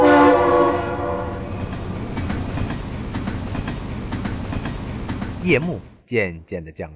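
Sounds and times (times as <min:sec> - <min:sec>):
train horn blaring: 0:00.0 - 0:02.0
train speeding along railway tracks: 0:00.0 - 0:06.1
speech: 0:05.5 - 0:06.9.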